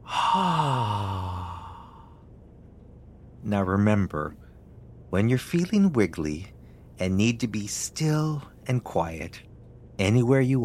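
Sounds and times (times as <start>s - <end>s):
person sighing out breath through the mouth in a breathing exercise: 0.0s - 2.2s
speech: 0.4s - 1.0s, 3.5s - 4.4s, 5.1s - 10.6s.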